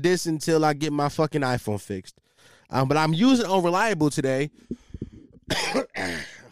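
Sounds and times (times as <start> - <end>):
speech: 0.0 - 4.8, 5.5 - 6.4
person clearing throat: 5.5 - 6.5
person coughing: 5.5 - 6.5.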